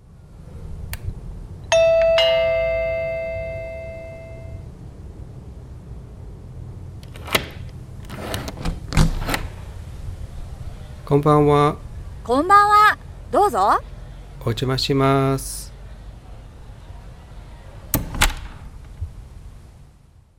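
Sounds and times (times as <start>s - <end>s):
doorbell chiming: 1.7s - 4.6s
door sounds: 7.0s - 9.8s, 17.9s - 19.0s
speech: 11.1s - 15.7s.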